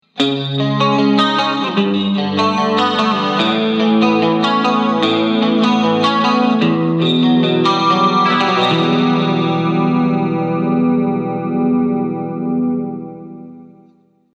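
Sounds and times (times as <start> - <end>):
clean chorus tone: 0.2 - 14.0.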